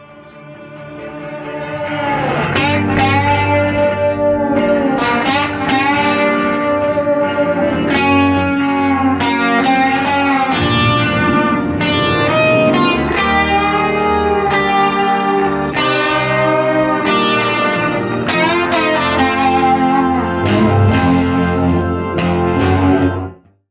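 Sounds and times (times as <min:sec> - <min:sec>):
second guitar solo: 0:00.0 - 0:23.4.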